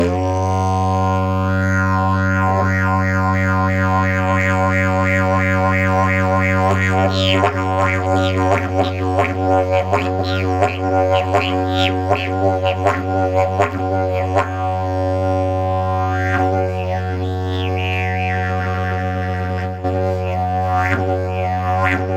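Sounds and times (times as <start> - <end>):
maple didgeridoo: 0.0 - 22.1.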